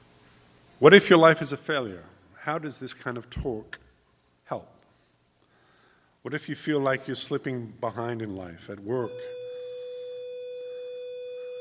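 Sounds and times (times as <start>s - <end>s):
faint hiss: 0.0s - 11.6s
speech: 0.8s - 3.8s, 4.5s - 4.8s, 6.2s - 9.4s
steady electronic buzzer tone: 8.9s - 11.6s.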